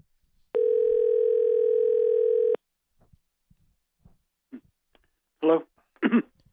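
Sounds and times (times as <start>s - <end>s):
telephone dial tone while placing a call: 0.6s - 2.6s.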